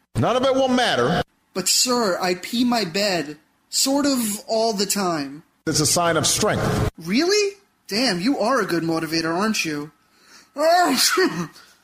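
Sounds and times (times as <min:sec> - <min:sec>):
speech: 0:00.2 - 0:10.0, 0:10.6 - 0:11.7
person sneezing after petting a dog: 0:10.8 - 0:11.7.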